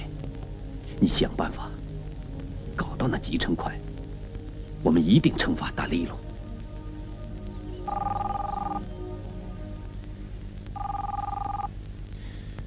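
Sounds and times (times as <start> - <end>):
speech: 1.0 - 1.8, 3.0 - 3.9, 4.8 - 6.2
telephone ringing in electronic trills: 7.9 - 8.9, 10.8 - 11.7.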